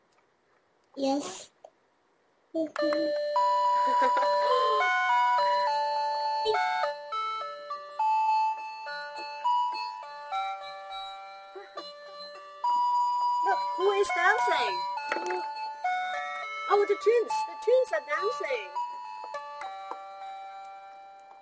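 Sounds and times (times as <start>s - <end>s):
speech: 1.0s - 1.5s, 2.6s - 4.6s, 6.4s - 6.7s, 13.9s - 15.5s, 16.7s - 18.8s
electronic doorbell chime: 2.8s - 21.3s.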